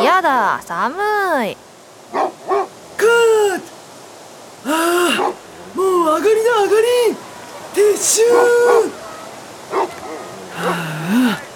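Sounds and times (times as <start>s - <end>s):
speech: 0.2s - 3.7s, 4.6s - 9.0s, 9.7s - 11.5s
dog giving short yipping barks: 2.1s - 2.7s, 5.2s - 5.4s, 8.3s - 10.8s.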